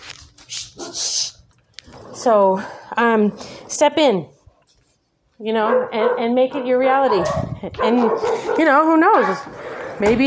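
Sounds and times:
dog barking: 0:00.8 - 0:01.0, 0:05.6 - 0:10.1
speech: 0:02.2 - 0:04.4, 0:05.4 - 0:10.2.

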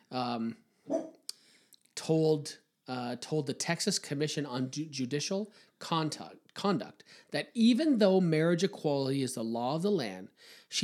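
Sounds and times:
speech: 0:00.1 - 0:01.0, 0:02.1 - 0:10.8
dog barking in short harmonic yowling bursts: 0:00.9 - 0:01.2.

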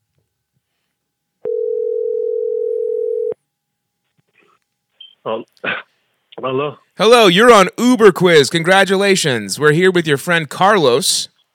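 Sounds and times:
phone ringback tone from a phone call in progress: 0:01.4 - 0:03.4
speech: 0:05.2 - 0:05.8, 0:06.4 - 0:11.3.

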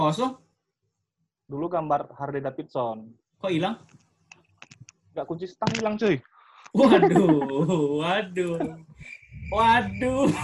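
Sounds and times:
speech: 0:00.0 - 0:00.4, 0:01.5 - 0:04.0, 0:05.2 - 0:10.4
low murmuring voices: 0:05.7 - 0:10.4
laughter: 0:06.7 - 0:09.0, 0:09.6 - 0:10.4
cricket chirp sound effect: 0:07.4 - 0:10.4.

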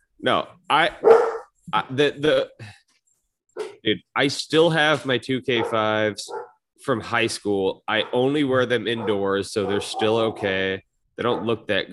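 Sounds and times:
speech: 0:00.2 - 0:02.8, 0:03.8 - 0:11.9
dog barking: 0:01.0 - 0:01.5, 0:05.6 - 0:06.6, 0:08.0 - 0:08.3, 0:08.9 - 0:10.5, 0:11.2 - 0:11.6.

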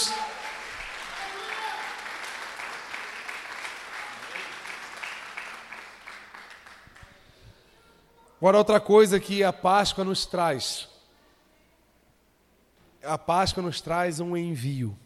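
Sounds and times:
audience applauding: 0:00.0 - 0:07.2
speech: 0:08.4 - 0:10.9, 0:13.0 - 0:15.0.

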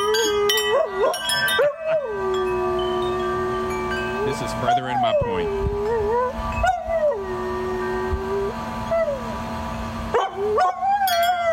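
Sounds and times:
wind chimes ringing: 0:00.0 - 0:05.4, 0:11.1 - 0:11.5
dog howling along to wind chimes: 0:00.0 - 0:09.4, 0:10.1 - 0:11.5
speech: 0:04.4 - 0:06.1.

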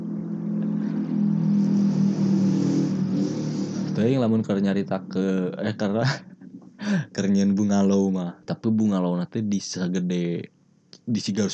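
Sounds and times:
motorcycle engine passing: 0:00.0 - 0:06.6
speech: 0:04.0 - 0:11.5
laughter: 0:05.8 - 0:07.2.

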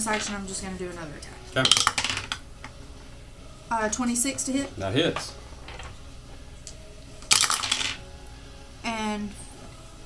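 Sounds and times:
speech: 0:00.0 - 0:02.2, 0:03.7 - 0:05.4, 0:09.2 - 0:09.4
dice clattering across a hard tabletop: 0:01.6 - 0:02.4, 0:07.2 - 0:08.0.

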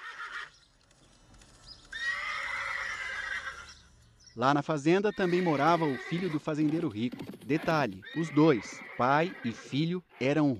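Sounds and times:
horse on a farm in southern Brazil neighing: 0:00.0 - 0:00.5, 0:01.9 - 0:03.8, 0:05.1 - 0:10.5
speech: 0:04.4 - 0:10.5.

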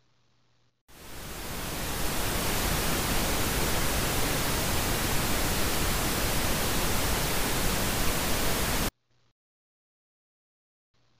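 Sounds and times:
pink noise: 0:00.9 - 0:08.9.

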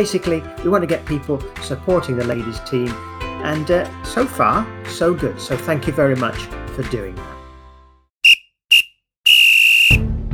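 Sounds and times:
speech: 0:00.0 - 0:07.4
referee's final whistle blasts: 0:08.2 - 0:10.0.

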